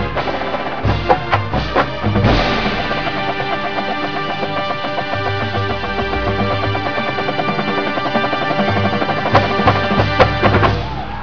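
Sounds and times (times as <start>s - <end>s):
accelerando music: 0.0s - 11.0s
impact hits: 2.2s - 4.4s.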